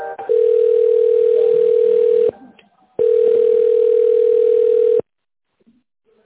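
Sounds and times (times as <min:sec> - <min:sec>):
telephone line tone while a call is being transferred: 0:00.2 - 0:02.4, 0:03.0 - 0:05.1.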